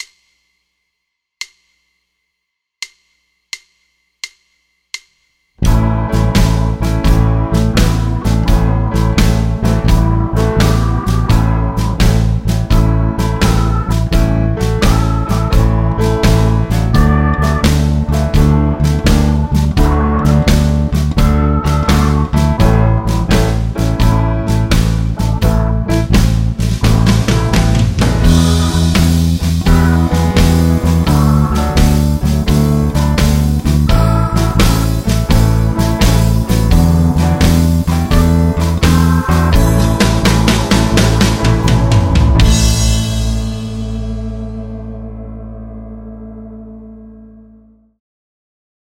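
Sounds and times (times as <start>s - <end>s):
full band playing bass house blues with shuffle rhythm: 5.6s - 44.8s.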